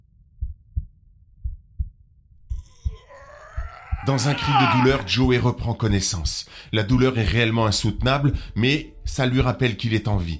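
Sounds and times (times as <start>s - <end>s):
slow heartbeat of an unconscious man: 0.3s - 5.4s, 7.8s - 9.6s
speech: 4.0s - 10.3s.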